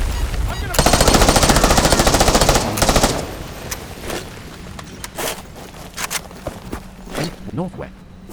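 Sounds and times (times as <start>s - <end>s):
video game AK-74 assault rifle automatic gunfire: 0.1s - 5.3s
video game Beretta M9 semi-automatic pistol single shots: 0.5s - 4.3s
speech: 7.6s - 8.0s.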